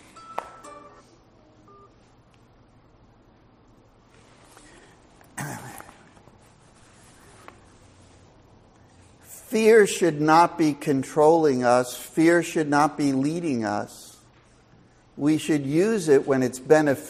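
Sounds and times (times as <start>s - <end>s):
mobile phone ringing with short electronic tones during a talk: 0.0s - 2.1s
person clearing throat: 5.3s - 6.2s
speech: 9.5s - 14.0s, 15.2s - 17.0s.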